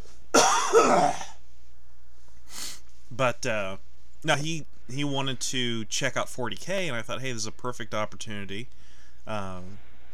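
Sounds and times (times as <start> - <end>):
person coughing: 0.4 - 1.4
speech: 0.7 - 1.2, 3.1 - 10.1
raspy exhale: 2.4 - 2.9.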